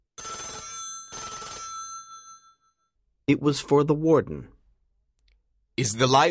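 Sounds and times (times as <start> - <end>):
telephone bell ringing: 0.2 - 3.0
speech: 3.3 - 4.6, 5.8 - 6.2.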